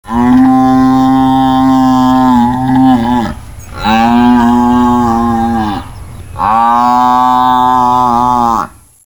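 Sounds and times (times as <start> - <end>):
European bison groaning bellows: 0.0 - 8.8.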